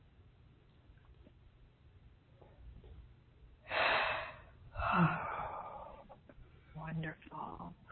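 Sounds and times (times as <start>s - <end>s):
slow deep breath in and out during a guided relaxation: 3.6s - 6.8s.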